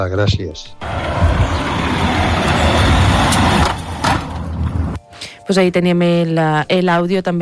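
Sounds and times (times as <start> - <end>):
speech: 0.0 - 1.6, 5.5 - 7.4
car passing by on a street: 0.8 - 5.0.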